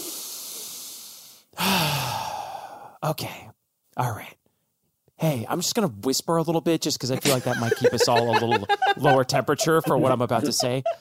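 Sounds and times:
deep breath with faint voiced sigh: 0:00.0 - 0:03.0
speech: 0:03.0 - 0:04.4, 0:05.2 - 0:11.0
laughter: 0:07.2 - 0:11.0.

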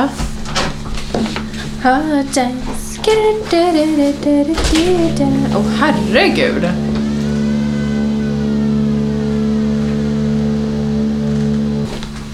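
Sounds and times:
speech: 0:00.0 - 0:00.3, 0:01.8 - 0:06.8
drilling on the street outside: 0:04.8 - 0:12.3.

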